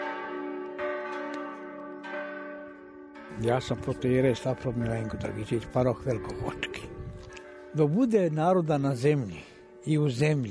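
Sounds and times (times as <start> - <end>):
church bells ringing after liturgy: 0.0 - 10.4
speech: 3.4 - 7.0, 7.7 - 10.4.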